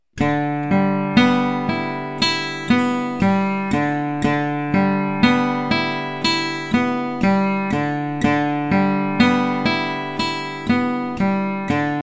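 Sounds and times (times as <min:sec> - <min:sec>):
guitar arpeggio pattern: 0:00.2 - 0:12.0.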